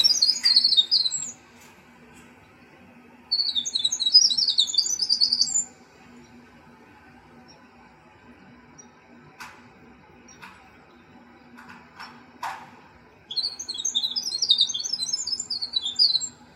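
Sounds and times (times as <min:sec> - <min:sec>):
winter wren song: 0:00.0 - 0:12.4, 0:13.0 - 0:16.5.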